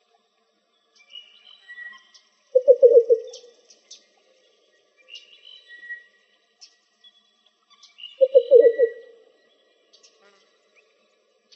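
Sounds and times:
least bittern low pulsed cooing in Arizona: 0:02.5 - 0:03.5, 0:08.2 - 0:09.2.

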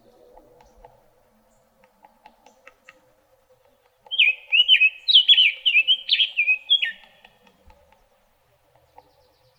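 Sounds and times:
summer tanager singing in Arizona: 0:03.9 - 0:07.4, 0:08.8 - 0:09.5.

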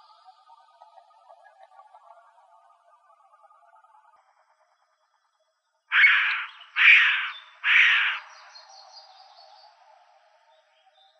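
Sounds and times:
Williamson's Sapsucker calling in Arizona: 0:05.9 - 0:08.2.

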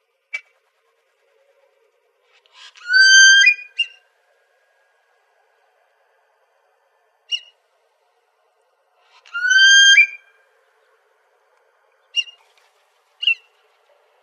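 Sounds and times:
Fulvous whistling-duck whistling calls: 0:02.8 - 0:04.0, 0:09.3 - 0:10.2.

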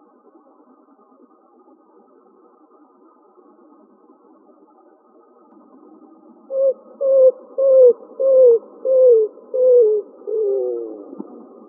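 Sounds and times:
greater roadrunner cooing in Arizona United States: 0:07.1 - 0:11.1.

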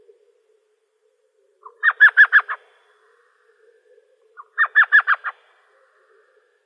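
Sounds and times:
Elf Owl yelping in Arizona: 0:01.6 - 0:02.6, 0:04.4 - 0:05.4.

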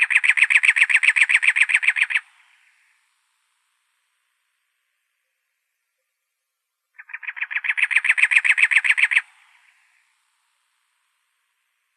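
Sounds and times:
cactus wren giving grating rapid chugging notes in Arizona: 0:00.0 - 0:02.7, 0:07.0 - 0:10.0.

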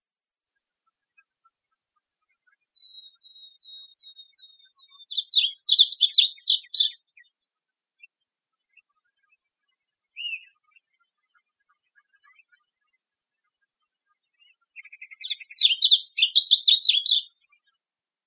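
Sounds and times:
varied bunting singing in Arizona: 0:05.1 - 0:07.0, 0:14.9 - 0:17.3.

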